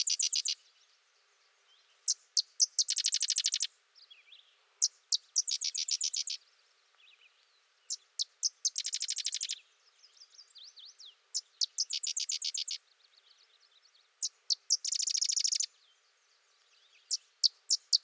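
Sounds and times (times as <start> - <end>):
sedge wren song with sharp chips and dry chattering trill: 0.0 - 0.6, 2.1 - 3.7, 4.8 - 6.4, 7.9 - 9.6, 11.3 - 12.8, 14.2 - 15.7, 17.0 - 18.0.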